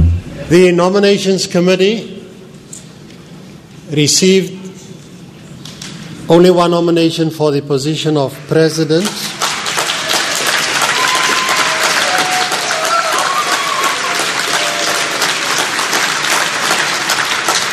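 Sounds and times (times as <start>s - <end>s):
speech: 0.5s - 2.1s, 3.9s - 4.7s, 6.3s - 9.4s
applause from a sizable audience at a general assembly session: 9.3s - 17.7s
faint cheers: 10.8s - 15.2s.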